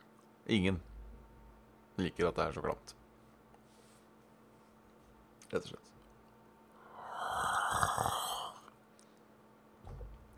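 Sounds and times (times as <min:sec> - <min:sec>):
speech: 0:00.5 - 0:00.9, 0:02.0 - 0:03.0, 0:05.5 - 0:06.0
person slurping coffee: 0:07.3 - 0:08.7
soft low thump: 0:09.8 - 0:10.3.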